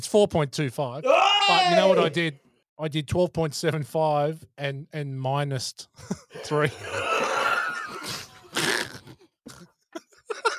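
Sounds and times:
speech: 0.0 - 7.3
involuntary snort: 8.0 - 9.7.

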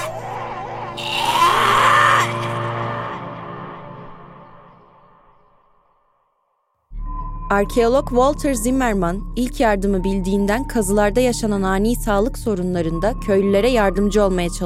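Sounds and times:
person moaning: 0.0 - 3.3
person screaming in anguish during a seizure: 0.0 - 3.6
speech: 7.5 - 14.6.

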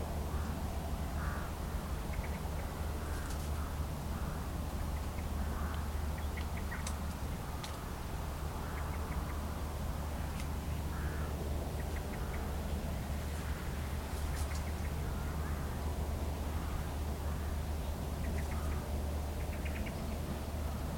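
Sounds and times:
gentle breeze through the last leaves on hedgerows: 0.0 - 20.9
birds singing beside the River Severn: 0.3 - 20.9.

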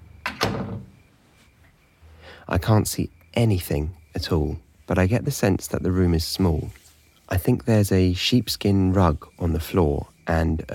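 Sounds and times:
door opening and closing: 0.0 - 1.1
speech: 2.5 - 10.7.

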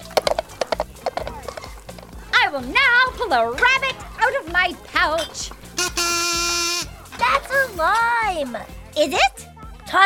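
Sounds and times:
donkey hooves clip-clopping: 0.0 - 7.5
speech: 2.5 - 5.6, 7.5 - 10.0.

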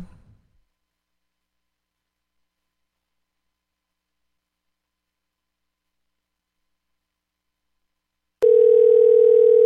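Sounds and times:
telephone dial tone on a phone line: 8.4 - 9.6.

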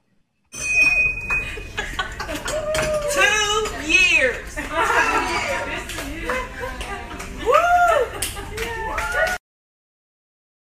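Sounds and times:
bell ringing to celebrate finishing cancer treatment: 0.5 - 1.8
people laughing: 1.4 - 3.1, 4.5 - 9.3
lively crowd cheering: 2.2 - 3.7, 4.7 - 9.4
excited voices: 2.2 - 9.4.

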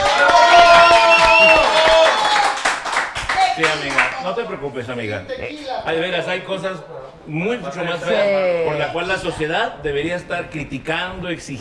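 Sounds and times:
excited cheering voices: 0.0 - 4.1
audience applause: 0.0 - 4.2
speech: 4.3 - 11.5.

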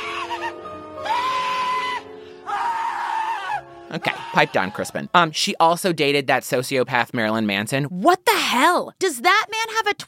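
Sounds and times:
person screaming high-pitched: 0.0 - 4.9
speech: 3.9 - 10.0.

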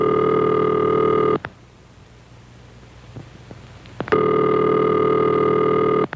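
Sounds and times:
telephone ringback tone after dialing on a rotary dial telephone: 0.0 - 1.4, 4.1 - 6.1.

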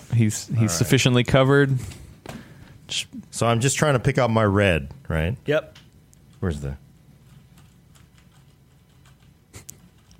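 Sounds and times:
low steady hum: 0.0 - 10.1
speech: 0.2 - 2.0, 2.9 - 5.8, 6.4 - 6.8
typing on a mechanical keyboard: 7.3 - 10.1.

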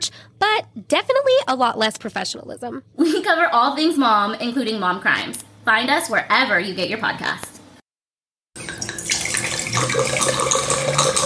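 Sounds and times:
speech: 0.7 - 7.5
wine pouring into a glass: 8.6 - 11.2.

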